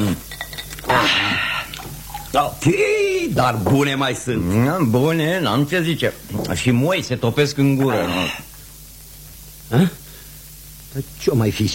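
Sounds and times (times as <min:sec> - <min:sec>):
cold spring water being poured for guests: 0:01.6 - 0:02.5
speech: 0:02.3 - 0:08.5, 0:09.7 - 0:10.0, 0:10.9 - 0:11.7.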